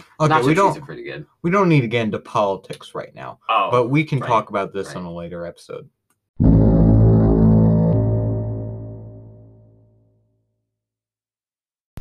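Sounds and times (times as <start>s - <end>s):
speech: 0.2s - 6.6s
deep blast from a ceremonial foghorn: 6.4s - 9.7s.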